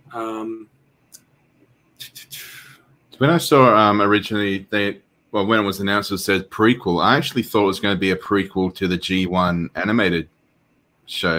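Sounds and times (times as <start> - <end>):
murmured voice: 0.0 - 0.6
speech: 0.1 - 0.8, 3.2 - 10.4, 11.1 - 11.3.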